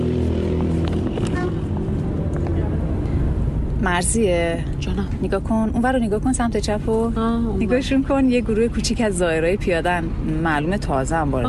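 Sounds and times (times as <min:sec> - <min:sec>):
bus engine rumbling as it pulls up at a bus stop: 0:00.0 - 0:11.4
street noise: 0:00.0 - 0:11.4
speech: 0:03.8 - 0:11.4.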